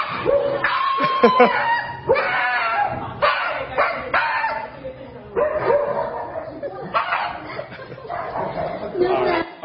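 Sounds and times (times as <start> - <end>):
Shiba Inu dog screaming at the vet: 0.0 - 4.6
laughter: 0.9 - 2.1, 6.4 - 9.5
speech: 1.2 - 1.8.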